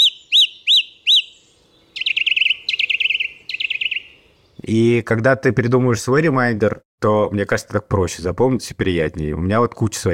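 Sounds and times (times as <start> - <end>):
song thrush singing: 0.0 - 4.8
speech: 4.7 - 10.1.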